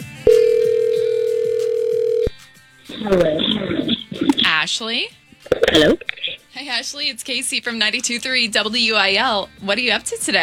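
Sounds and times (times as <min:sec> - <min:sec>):
telephone ringback tone while a call waits to be answered: 0:00.0 - 0:02.4
speech: 0:03.0 - 0:03.7, 0:04.6 - 0:10.4.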